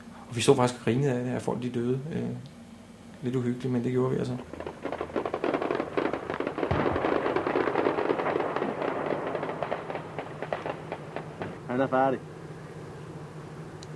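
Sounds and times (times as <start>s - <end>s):
speech: 0.3s - 2.6s, 3.2s - 4.7s, 11.8s - 12.3s
dense overlapping gunshots in a combat zone: 4.3s - 11.7s.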